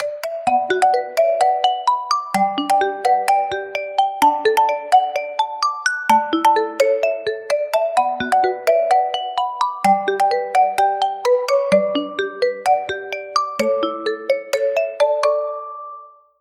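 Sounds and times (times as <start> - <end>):
marimba ringtone on a Honor 600 Pro phone: 0.0 - 16.2.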